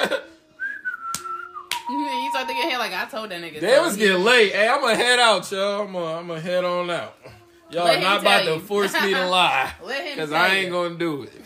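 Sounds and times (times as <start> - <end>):
person whistling a tune: 0.6 - 2.6
speech: 2.4 - 11.4.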